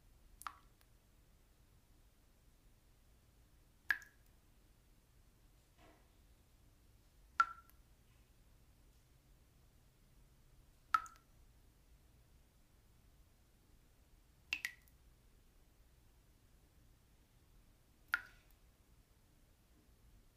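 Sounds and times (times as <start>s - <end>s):
single water droplets splashing: 0.4s - 0.9s, 3.9s - 4.3s, 7.4s - 7.8s, 11.0s - 11.3s, 14.5s - 15.0s, 18.1s - 18.6s.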